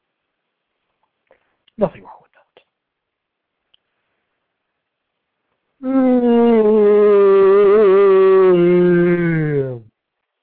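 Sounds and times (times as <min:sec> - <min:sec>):
speech: 0:01.8 - 0:02.2
long loud voiced yawn: 0:05.8 - 0:09.9.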